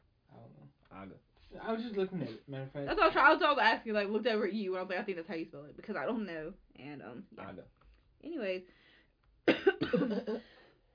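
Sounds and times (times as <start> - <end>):
speech: 1.0 - 8.8, 9.5 - 10.6
person with a month-long chesty cough coughing: 9.5 - 10.6.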